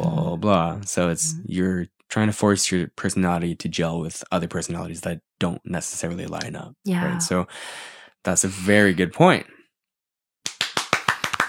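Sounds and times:
speech: 0.4s - 9.6s
pair of hands clapping: 10.4s - 11.4s.

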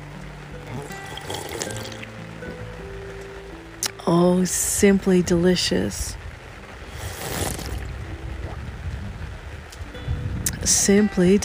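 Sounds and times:
coffee poured into a cup on a porch: 0.6s - 2.1s, 7.0s - 7.9s
speech: 4.1s - 6.2s, 10.9s - 11.4s.

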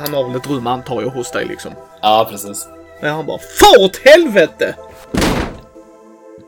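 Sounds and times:
speech: 0.0s - 5.4s
door slamming shut: 5.0s - 5.8s.

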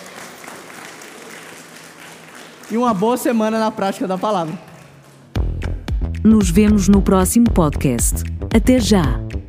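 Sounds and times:
church congregation applauding at the close of a Christian prayer: 0.0s - 5.6s
speech: 2.7s - 4.7s, 6.2s - 9.2s.

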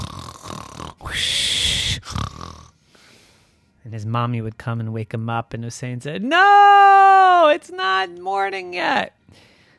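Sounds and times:
person imitating a boy snoring: 0.0s - 2.8s
speech: 3.9s - 9.5s.

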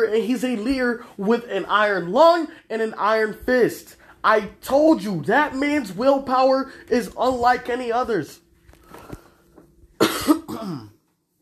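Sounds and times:
speech: 0.0s - 8.4s, 10.6s - 10.9s
breathing: 4.0s - 4.2s, 8.7s - 9.6s
person coughing harshly: 10.0s - 11.0s.

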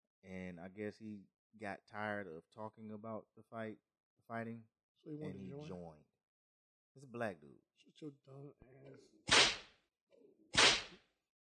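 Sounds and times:
speech: 0.3s - 6.1s, 7.0s - 9.3s
whip swishing through the air: 9.3s - 9.7s, 10.6s - 11.0s.

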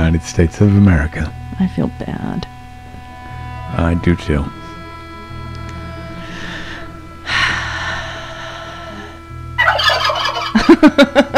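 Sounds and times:
speech: 0.1s - 2.5s, 3.7s - 4.6s, 10.7s - 11.3s
turkey gobbling: 9.6s - 10.8s
laughter: 10.4s - 11.3s.

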